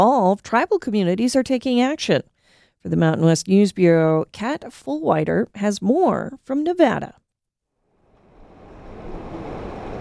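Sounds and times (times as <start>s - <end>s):
speech: 0.0s - 7.2s
river water flowing: 8.1s - 9.9s.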